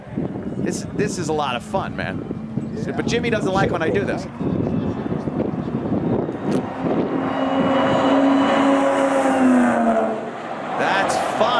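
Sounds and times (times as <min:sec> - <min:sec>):
wind noise: 0:00.0 - 0:11.2
rushing road noise: 0:00.0 - 0:11.5
speech: 0:00.7 - 0:04.7
supercharged car engine accelerating hard down a racetrack straightaway: 0:01.6 - 0:10.8.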